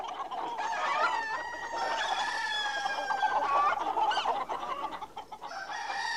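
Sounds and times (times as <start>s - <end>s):
chickens clucking and squawking: 0.0s - 6.1s
rooster-like crow: 0.6s - 3.3s, 5.5s - 6.1s.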